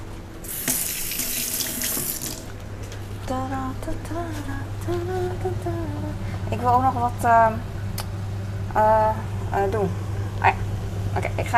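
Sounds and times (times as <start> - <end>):
tap water running while washing pepper from wet hands: 0.4 - 2.6
speech: 3.3 - 7.7, 8.8 - 10.6, 11.2 - 11.5.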